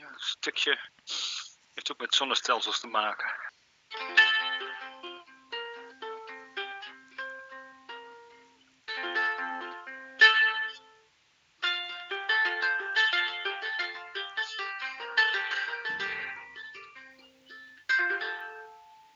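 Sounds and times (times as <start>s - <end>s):
speech: 0.2s - 4.0s
plucked guitar-like notes in a gentle twinkling melody: 3.9s - 19.1s.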